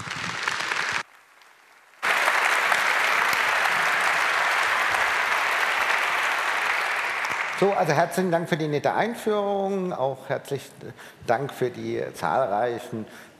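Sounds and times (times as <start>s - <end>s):
sustained applause from a sizable audience: 0.0s - 1.1s, 2.0s - 8.1s
speech: 7.6s - 13.3s.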